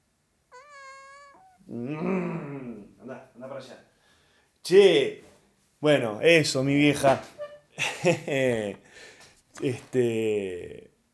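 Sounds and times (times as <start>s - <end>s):
kitten meowing in the grass: 0.5s - 1.7s
speech: 1.7s - 2.5s, 3.1s - 3.9s, 4.6s - 5.2s, 5.8s - 10.9s
laughter: 7.8s - 8.8s.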